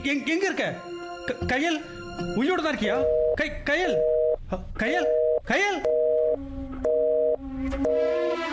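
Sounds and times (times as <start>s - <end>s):
speech: 0.0s - 5.9s, 7.7s - 8.2s
telephone line beeps after a call is cut off: 5.1s - 8.4s
low hum: 5.9s - 8.3s.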